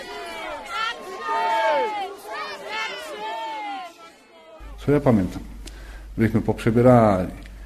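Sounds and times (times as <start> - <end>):
crowd shouting in a staged play: 0.0 - 5.2
speech: 4.8 - 5.5, 6.2 - 7.4.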